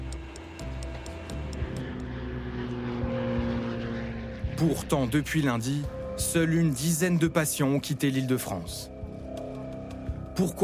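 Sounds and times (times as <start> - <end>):
propeller engine of a medical evacuation aircraft droning: 0.0 - 10.6
speech: 4.6 - 8.9, 10.4 - 10.6.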